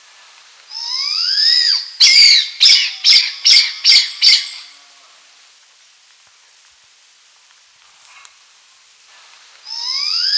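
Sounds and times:
blood pheasant calling with rising squeal and harsh screechy notes: 0.8 - 4.8.

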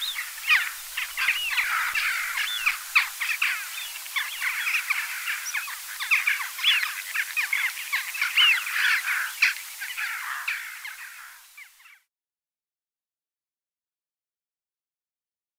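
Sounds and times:
Western Jackdaws calling together with harsh chatter: 0.0 - 12.0.

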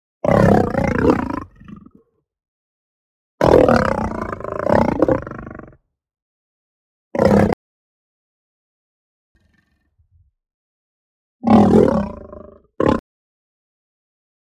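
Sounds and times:
lion roaring and growling aggressively: 0.3 - 2.0, 3.4 - 5.7, 11.4 - 13.0.

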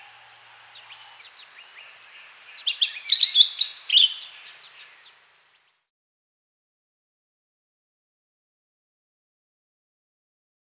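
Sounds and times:
constant high hiss: 0.0 - 5.8
faint high chirps: 0.0 - 5.8
lesser green leafbird song: 0.0 - 5.8.

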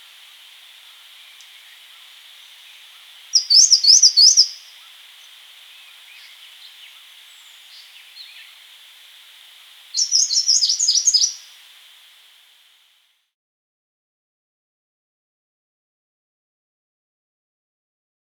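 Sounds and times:
grey-cheeked warbler singing: 0.0 - 12.3
steady hiss: 0.0 - 13.3.

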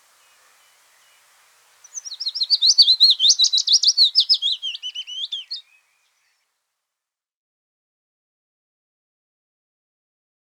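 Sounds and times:
willow warbler song of slurred whistled notes: 0.0 - 6.5.

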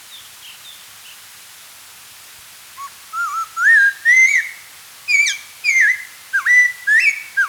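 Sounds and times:
Spotted laughingthrush song of clear whistled phrases: 2.8 - 4.5, 5.1 - 7.4.

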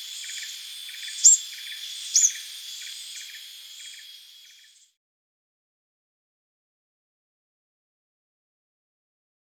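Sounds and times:
cricket chirping: 0.0 - 4.9
insect drone: 0.0 - 4.9
plain sunbird calls: 0.0 - 4.9.

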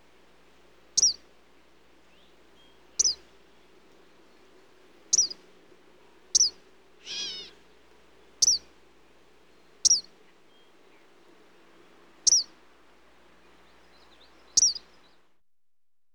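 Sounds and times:
faint low hum: 0.0 - 15.4
Eastern kingbird giving short, sharp, high sputtering call notes: 1.0 - 1.2, 5.1 - 5.4, 6.3 - 7.6, 8.4 - 8.7, 9.8 - 10.1, 12.2 - 12.5, 13.9 - 15.1.

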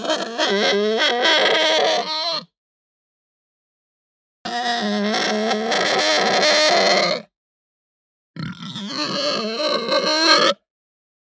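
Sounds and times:
Hampshire pig uttering a raspy wavering squeal: 0.0 - 2.5, 4.5 - 7.3, 8.4 - 10.6.

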